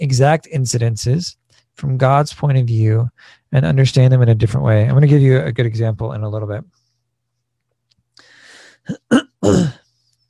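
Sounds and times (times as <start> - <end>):
speech: 0.1 - 6.8, 8.8 - 9.8
person coughing: 8.9 - 9.8.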